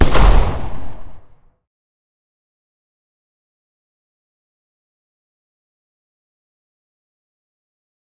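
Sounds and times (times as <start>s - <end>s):
distant Glock pistol fire: 0.0s - 1.4s.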